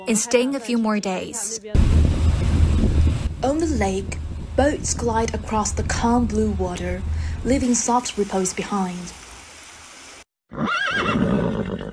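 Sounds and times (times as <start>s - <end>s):
speech: 0.1s - 2.5s, 3.4s - 9.2s
horse whinnying on a lakeshore: 10.5s - 11.9s.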